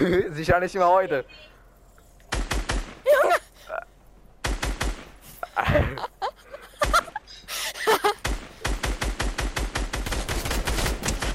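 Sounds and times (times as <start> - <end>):
speech: 0.0 - 1.5
gunfire in a video game: 2.3 - 3.1, 4.4 - 5.2, 8.2 - 11.3
laughter: 5.4 - 8.2.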